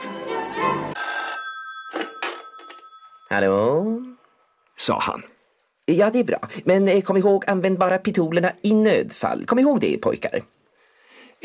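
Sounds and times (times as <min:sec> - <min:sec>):
telephone ringing in an office: 0:00.9 - 0:04.7
speech: 0:03.3 - 0:04.1, 0:04.8 - 0:05.3, 0:05.9 - 0:10.6.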